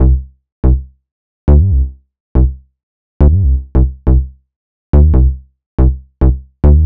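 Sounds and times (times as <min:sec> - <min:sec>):
house bass in C minor: 0:01.5 - 0:02.6, 0:03.2 - 0:04.2, 0:05.0 - 0:06.8.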